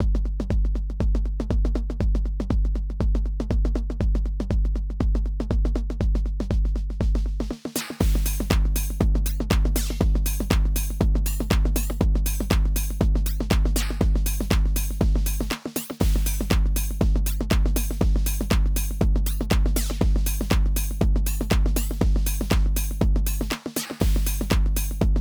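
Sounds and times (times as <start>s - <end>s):
drum machine beat with EQ: 0.0s - 25.1s.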